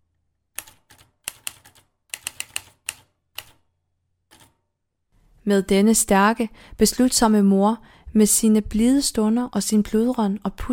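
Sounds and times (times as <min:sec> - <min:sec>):
typewriter keys clacking at home: 0:00.6 - 0:03.6, 0:04.3 - 0:04.6
speech: 0:05.5 - 0:10.7.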